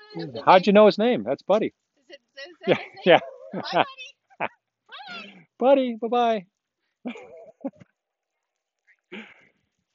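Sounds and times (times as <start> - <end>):
speech: 0.1 - 1.8, 2.4 - 4.6, 5.2 - 7.9, 9.1 - 9.4
laughter: 2.6 - 4.0, 7.1 - 7.8
dog grumbling call: 3.0 - 3.7
dog wavering moaning yowl with a quick yip: 3.0 - 3.8.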